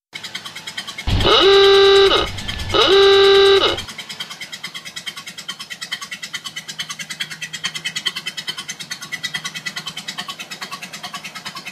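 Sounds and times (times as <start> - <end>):
ahooga horn ringtone: 1.1 - 3.9.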